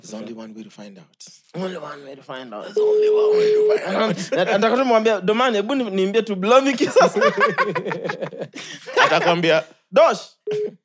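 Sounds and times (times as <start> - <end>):
speech: 0.0 - 10.8
laughter: 2.7 - 5.0, 6.8 - 9.5
single-pitched telephone ringing tone on a call: 2.8 - 3.8.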